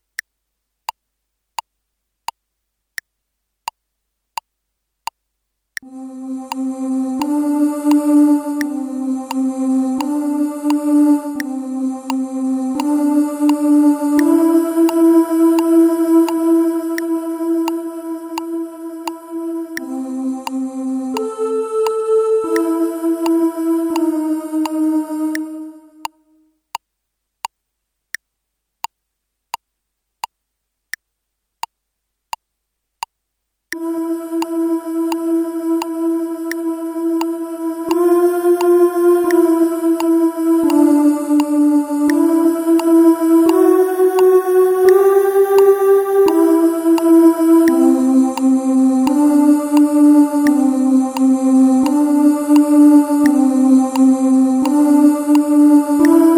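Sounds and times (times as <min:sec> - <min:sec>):
alto voices singing: 0:05.8 - 0:26.4, 0:33.8 - 0:56.3.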